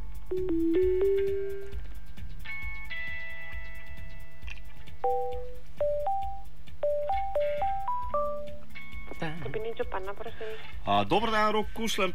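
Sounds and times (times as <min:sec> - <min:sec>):
speech: 0:00.3 - 0:01.0, 0:10.2 - 0:12.1
melodic electronic telephone ringing tone during an outgoing call: 0:00.3 - 0:01.8, 0:05.1 - 0:08.6.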